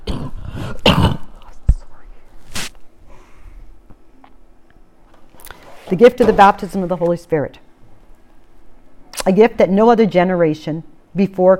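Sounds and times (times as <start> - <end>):
person coughing and clearing throat: 0.0 - 1.4
breathy noise: 3.0 - 3.7
speech: 5.9 - 7.6, 9.2 - 11.5.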